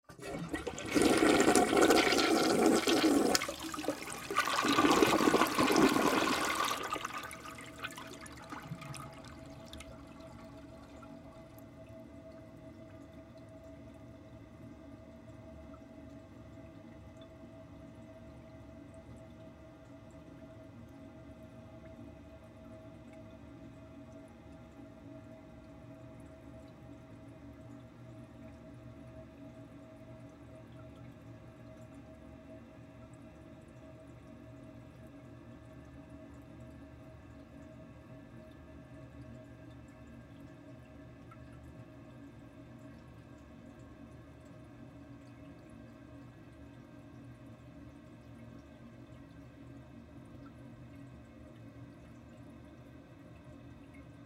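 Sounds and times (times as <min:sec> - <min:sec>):
toilet water running long: 0:00.1 - 0:13.2
household bathroom toilet bowl flushing: 0:00.1 - 0:13.3.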